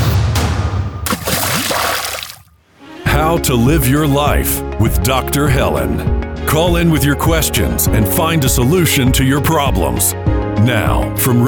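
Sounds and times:
stream of water trickling and splashing: 1.1s - 2.6s
speech: 3.2s - 11.4s.

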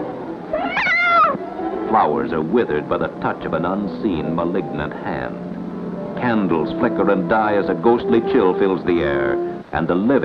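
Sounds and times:
faint hiss: 0.0s - 10.2s
frightened cat yowling: 0.5s - 1.5s
speech: 2.0s - 5.5s, 6.2s - 10.2s.

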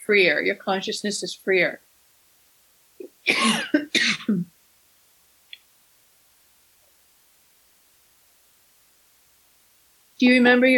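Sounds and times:
speech: 0.1s - 1.9s, 3.2s - 4.5s, 10.2s - 10.7s
person coughing from a tickle in the throat: 3.0s - 4.5s
faint click: 5.5s - 5.7s.

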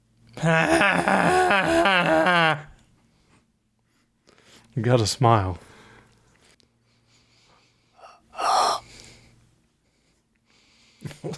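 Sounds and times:
speech: 0.4s - 2.7s, 4.8s - 5.7s
person breathing sharply into a microphone: 7.5s - 9.3s.

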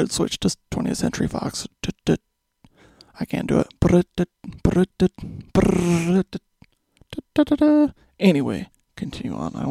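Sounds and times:
speech: 0.0s - 2.2s, 3.2s - 6.5s, 7.1s - 9.6s
person vocally imitating a cinema sound logo: 3.5s - 8.0s.

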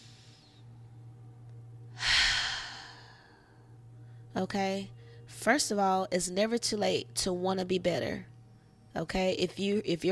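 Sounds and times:
low steady hum: 0.0s - 10.1s
deep breath being inhaled: 2.0s - 4.3s
speech: 4.4s - 8.3s, 9.0s - 10.1s.

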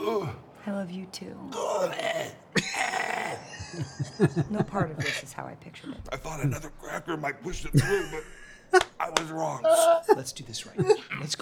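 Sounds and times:
speech: 0.1s - 11.4s
strained throaty vocal noises clearing the throat: 2.0s - 3.5s, 7.6s - 8.6s
sharp cough: 2.6s - 3.2s, 7.6s - 8.7s
laughter: 3.4s - 5.4s, 6.0s - 11.4s.

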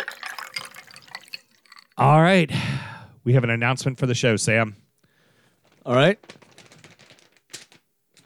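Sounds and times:
speech: 2.0s - 4.8s, 5.8s - 6.3s
sheet of paper crinkling and rustling as it is pulled out: 5.5s - 8.2s.

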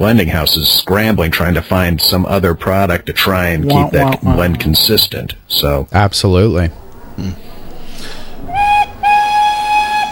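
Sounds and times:
speech: 0.0s - 7.5s
steam train whistle blasts with bright reedy tone: 8.5s - 10.1s.

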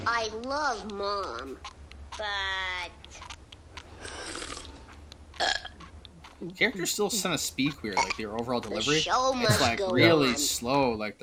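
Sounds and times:
speech: 0.1s - 3.3s, 5.4s - 5.7s, 6.4s - 11.2s
drawn-out croaky burp: 5.4s - 5.8s.

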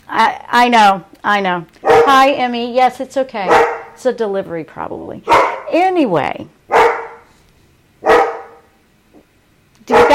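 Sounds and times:
speech: 0.2s - 6.6s
large Akita dog barking: 1.8s - 2.2s, 3.5s - 4.0s, 5.3s - 5.8s, 6.7s - 7.3s, 8.0s - 8.8s, 9.9s - 10.1s.

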